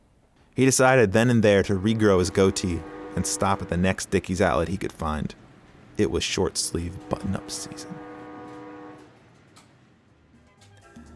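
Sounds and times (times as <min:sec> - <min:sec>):
speech: 0:00.6 - 0:05.4, 0:06.0 - 0:08.0
train rumbling with clatter and roar of rolling cars: 0:01.0 - 0:09.6
short tonal train horn blast: 0:01.6 - 0:04.1, 0:06.4 - 0:09.3.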